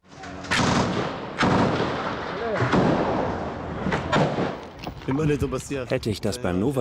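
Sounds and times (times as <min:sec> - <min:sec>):
gunfire from a 1980s-era rifle used as a machine gun: 0:00.5 - 0:04.6
speech: 0:05.1 - 0:06.7.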